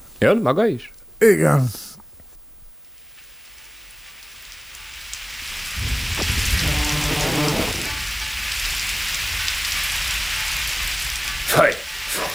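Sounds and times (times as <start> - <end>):
speech: 0.2 - 1.8
heavy rain pouring: 4.4 - 12.3
low rumbling: 5.7 - 9.5.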